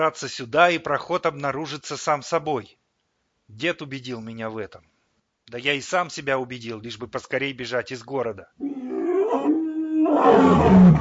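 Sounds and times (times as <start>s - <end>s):
speech: 0.0s - 2.8s, 3.5s - 4.9s, 5.5s - 8.7s, 10.2s - 10.9s
low deep roar rolling across a snowy plain: 8.7s - 10.9s.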